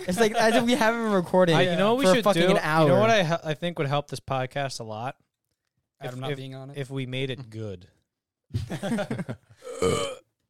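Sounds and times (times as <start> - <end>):
speech: 0.0 - 5.3, 6.0 - 10.2
person burping: 9.6 - 10.3.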